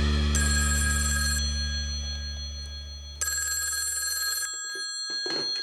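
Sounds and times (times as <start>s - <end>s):
telephone bell ringing: 0.4s - 5.6s.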